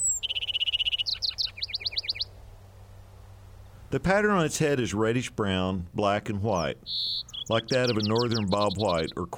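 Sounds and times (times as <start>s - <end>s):
lark sparrow singing in summer in western Arkansas: 0.0s - 2.4s, 6.6s - 9.3s
low steady hum: 0.0s - 9.3s
speech: 3.9s - 9.3s.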